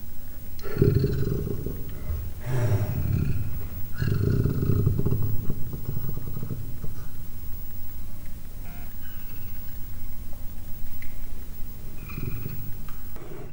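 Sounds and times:
three-month-old captive leopard cub growling in a zoo: 0:00.4 - 0:08.2, 0:11.6 - 0:13.5.

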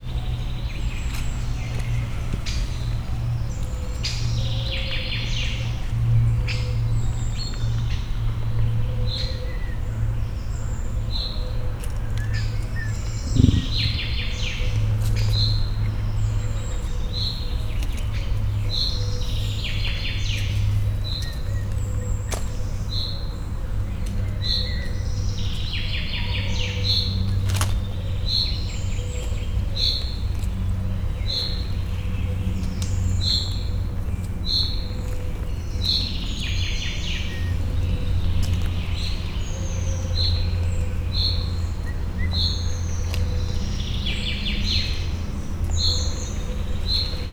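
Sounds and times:
birds: 0:00.0 - 0:47.3
emu mother making a deep sound: 0:13.2 - 0:14.4.

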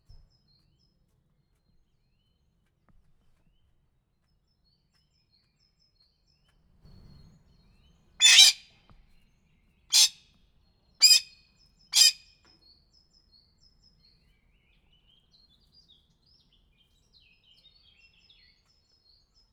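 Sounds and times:
golden pheasant screeching at Felsolajos zoo: 0:08.2 - 0:08.6, 0:09.9 - 0:10.1, 0:11.0 - 0:11.3, 0:12.0 - 0:12.2.

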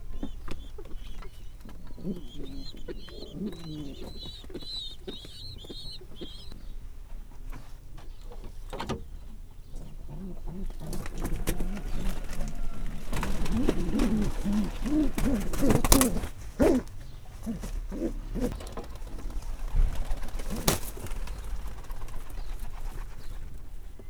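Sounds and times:
strange pigeon arriving in a farmyard: 0:00.0 - 0:06.7, 0:10.3 - 0:22.1.

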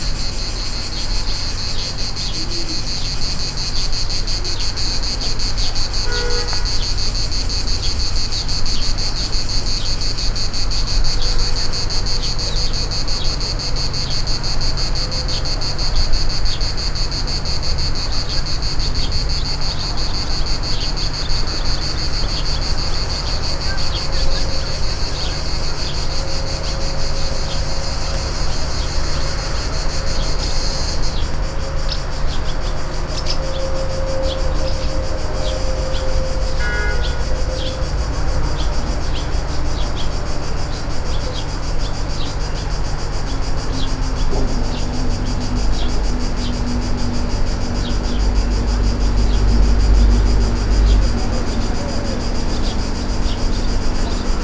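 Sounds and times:
distant vehicle traffic: 0:00.0 - 0:54.4
loud cicadas: 0:00.0 - 0:54.4.

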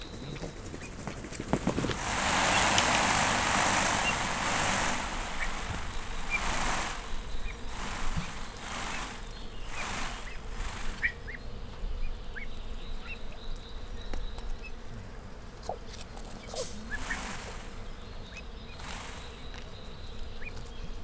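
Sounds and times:
peacock vibrating its plumage at a zoo: 0:00.2 - 0:11.5, 0:16.4 - 0:20.5.

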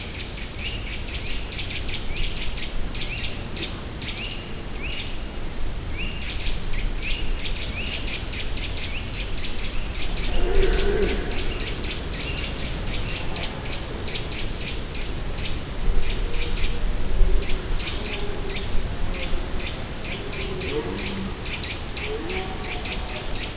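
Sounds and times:
birds: 0:00.0 - 0:23.5
branches rustling: 0:09.0 - 0:23.5
red deer stags bellowing in a deep valley: 0:09.5 - 0:23.5.

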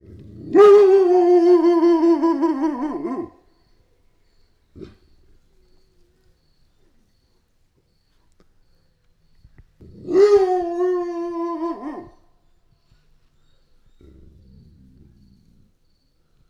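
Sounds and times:
grey wolf howling in Hortobágy National Park: 0:00.4 - 0:03.4, 0:10.0 - 0:12.3.

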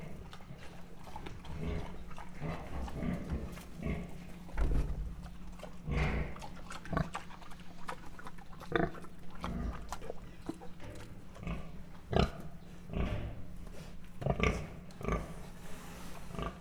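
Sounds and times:
Mangalica pig grunting at a zoo in Miskolc: 0:00.0 - 0:16.5.

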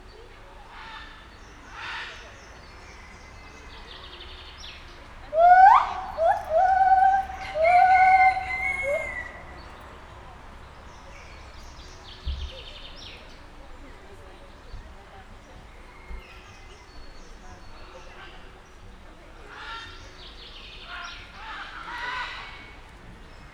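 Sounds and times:
white-handed gibbon calling at a zoo in Nyiregyhaza: 0:05.3 - 0:09.6.

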